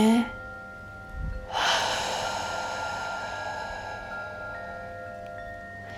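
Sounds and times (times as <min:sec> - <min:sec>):
faint sustained tones: 0:00.0 - 0:05.9
slow exhalation during breathing exercise: 0:01.5 - 0:05.9.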